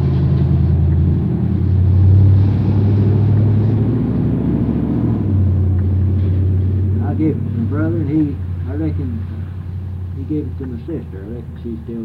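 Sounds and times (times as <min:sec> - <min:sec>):
heavy truck rumbling past: 0:00.0 - 0:12.0
speech: 0:07.9 - 0:09.3, 0:10.3 - 0:12.0.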